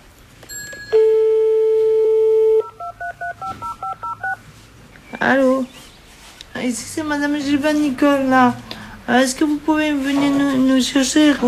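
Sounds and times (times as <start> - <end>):
telephone dial tone: 1.0 - 4.4
telephone keypad beeps at shifting pitches: 2.0 - 4.4
speech: 5.3 - 5.7, 6.7 - 11.4.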